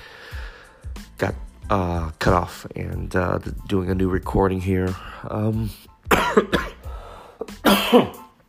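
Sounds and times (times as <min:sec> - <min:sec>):
speech: 0:01.2 - 0:06.8, 0:07.7 - 0:08.2
person coughing harshly: 0:06.1 - 0:08.3.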